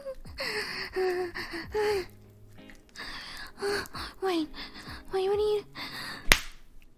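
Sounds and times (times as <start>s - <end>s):
soft breathy gasps or exhales: 0.2s - 5.1s, 5.7s - 6.3s
sharp slap: 6.3s - 6.7s.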